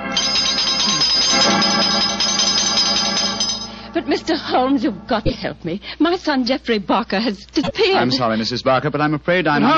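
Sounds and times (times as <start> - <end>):
doorbell ringing: 0.1 - 3.9
speech: 4.1 - 9.7.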